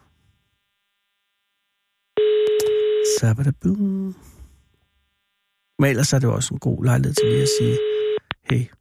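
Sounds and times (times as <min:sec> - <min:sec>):
telephone ringing tone on outgoing call: 0:02.2 - 0:03.2, 0:07.2 - 0:08.2
speech: 0:03.2 - 0:04.4, 0:05.8 - 0:08.7.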